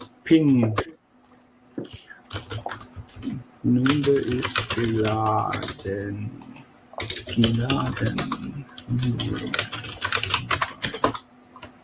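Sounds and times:
speech: 0.3 - 0.9, 3.6 - 9.8
fingers typing a message on a computer keyboard: 2.3 - 2.9, 3.8 - 5.8, 6.4 - 8.4, 9.0 - 11.2.

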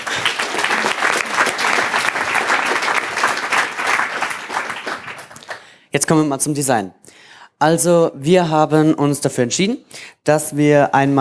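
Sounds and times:
audience clapping: 0.0 - 5.8
speech: 6.0 - 11.2.

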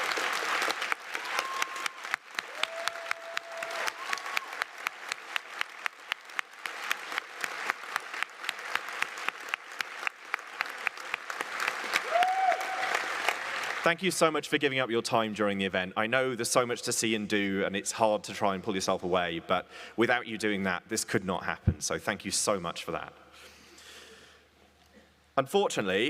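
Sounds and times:
room full of people clapping: 0.0 - 14.2
brief whistles from an audience: 1.3 - 2.1
speech: 13.9 - 23.5, 25.4 - 26.0.

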